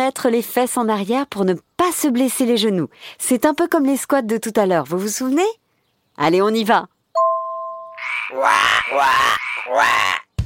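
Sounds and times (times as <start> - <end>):
speech: 0.0 - 5.6, 6.2 - 7.0, 8.3 - 10.2
voice imitating raspy frog croaks: 7.9 - 10.4.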